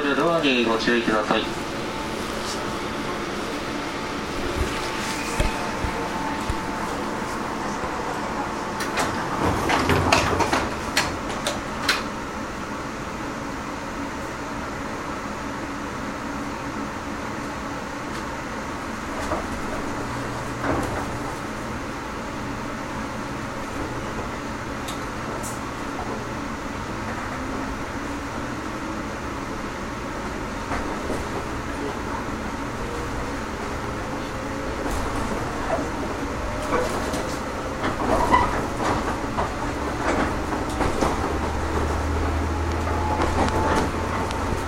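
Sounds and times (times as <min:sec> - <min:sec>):
rumble inside a running JR Kyushu 415 series electric local train on the Nippo Line: 0:00.0 - 0:44.6
rail-joint clicks: 0:04.5 - 0:12.1, 0:24.8 - 0:26.2, 0:34.2 - 0:44.6.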